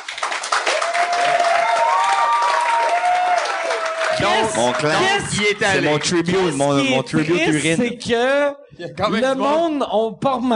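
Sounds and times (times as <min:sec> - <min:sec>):
live audience applause: 0:00.0 - 0:07.3
audience whooping and cheering: 0:00.6 - 0:07.3
speech: 0:04.3 - 0:10.5.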